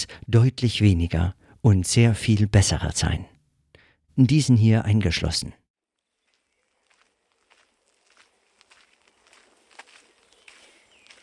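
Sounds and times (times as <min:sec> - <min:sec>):
speech: 0:00.3 - 0:03.3, 0:04.2 - 0:05.6
footsteps walking through a cemetery in Mannheim Germany: 0:06.0 - 0:11.2.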